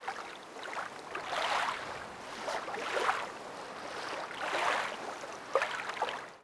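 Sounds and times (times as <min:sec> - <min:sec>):
lake ambience loop: 0:00.0 - 0:06.4.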